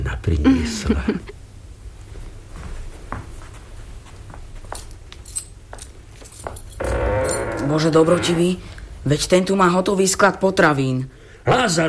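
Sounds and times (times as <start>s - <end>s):
speech: 0.0s - 1.4s, 7.7s - 11.8s
metal keys jangling and scraping in a chest lock: 4.8s - 6.8s.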